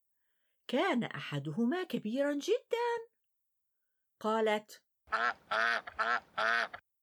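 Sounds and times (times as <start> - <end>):
speech: 0.7 - 3.1, 4.2 - 6.8
duck quacking: 5.1 - 6.8.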